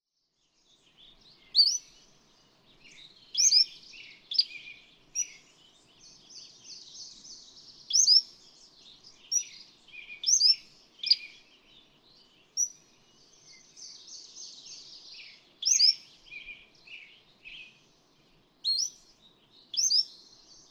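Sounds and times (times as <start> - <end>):
Cordilleran Flycatcher calling: 1.6 - 2.0, 2.9 - 5.5, 7.9 - 8.4, 9.3 - 11.3, 15.6 - 16.5, 18.6 - 19.1, 19.7 - 20.6.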